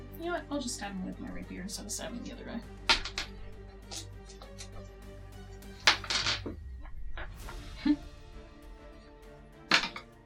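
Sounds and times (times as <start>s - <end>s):
speech: 0.2s - 3.0s
dice tumbling off a table: 2.9s - 3.3s, 5.9s - 6.5s.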